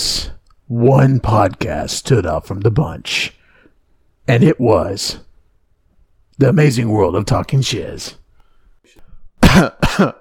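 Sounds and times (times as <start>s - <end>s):
speech: 0.7s - 3.4s, 4.3s - 5.2s, 6.4s - 8.2s, 8.9s - 10.1s
throat clearing: 9.4s - 10.1s.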